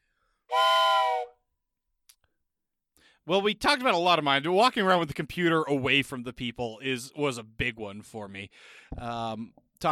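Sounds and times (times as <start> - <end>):
single loud multi-toned whistle blast: 0.5 - 1.4
speech: 3.2 - 9.9.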